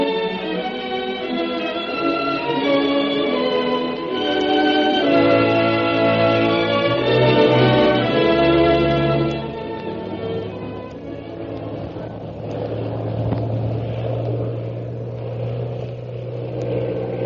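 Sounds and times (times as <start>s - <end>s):
propeller plane engine droning during aerial stunts: 0.0s - 17.2s.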